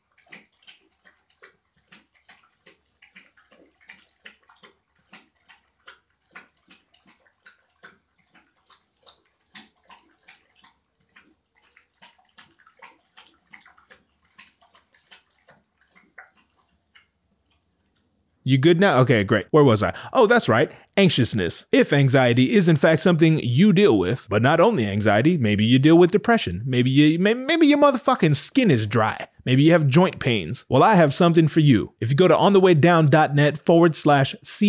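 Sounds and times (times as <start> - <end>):
dog lapping water: 0.0 - 18.3
speech: 18.5 - 34.6.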